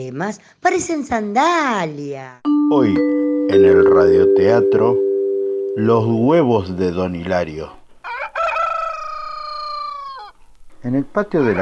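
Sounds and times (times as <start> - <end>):
speech: 0.0 - 5.0, 5.8 - 7.8, 10.8 - 11.6
rooster crowing in a two-storey henhouse in a village house courtyard: 8.0 - 10.4.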